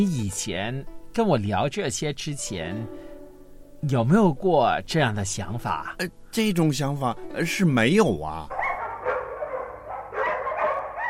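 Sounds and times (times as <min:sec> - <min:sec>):
speech: 0:00.0 - 0:03.0, 0:03.8 - 0:08.6
dog barking: 0:08.5 - 0:11.0.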